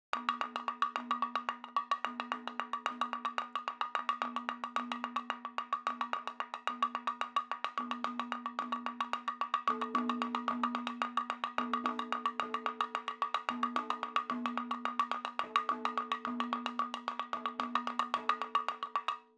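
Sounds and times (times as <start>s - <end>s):
madalam drum percussion: 0.1s - 19.3s.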